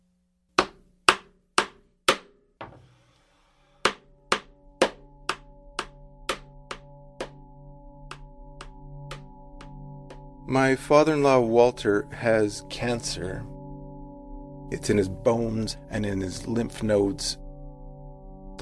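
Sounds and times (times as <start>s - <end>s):
hammer nailing wooden coffin sides together: 0.6s - 3.2s, 3.8s - 7.4s, 8.1s - 9.3s
speech: 10.5s - 13.5s, 14.7s - 17.4s.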